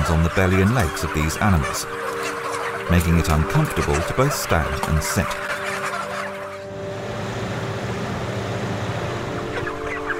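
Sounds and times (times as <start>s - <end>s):
chorus of broiler chicks clucking and chirping: 0.0s - 10.1s
speech: 0.1s - 2.1s, 2.9s - 5.6s
steady low mechanical hum: 6.6s - 10.1s.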